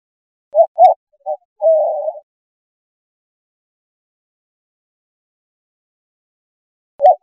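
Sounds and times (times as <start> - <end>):
white-winged dove cooing: 0.6 - 2.2, 7.0 - 7.2.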